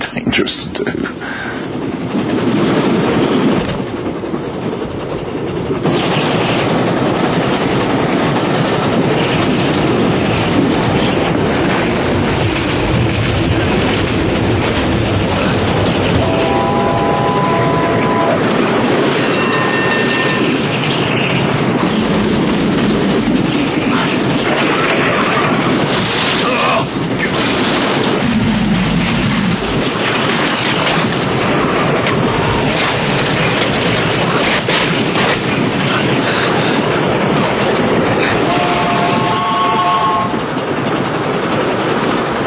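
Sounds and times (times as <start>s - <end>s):
train carriages rattling and rumbling along the rails: 0.0s - 42.4s
speech: 0.2s - 1.4s
brief metallic squeal of train wheels: 19.2s - 20.7s.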